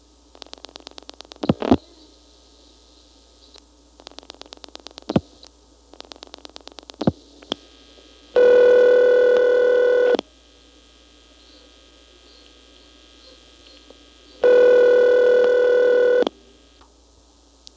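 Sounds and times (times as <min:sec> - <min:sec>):
long steady buzzing telephone ring tones: 0:08.4 - 0:10.2, 0:14.4 - 0:16.3.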